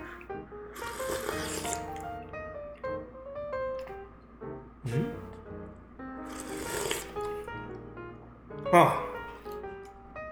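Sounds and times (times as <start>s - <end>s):
slurping milky-white seafood noodle soup broth: 0.0s - 2.2s, 6.2s - 7.6s
music: 0.0s - 10.3s
snort-like breath: 0.8s - 2.2s, 6.3s - 7.5s
speech: 8.7s - 9.0s.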